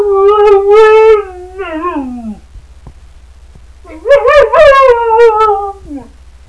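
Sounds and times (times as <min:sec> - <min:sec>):
female Siberian Husky howling: 0:00.0 - 0:02.4, 0:03.9 - 0:06.1.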